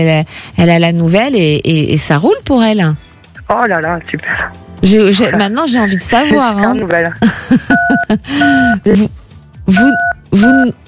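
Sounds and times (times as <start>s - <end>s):
speech: 0.0s - 10.8s
telephone keypad beeps: 9.8s - 10.7s.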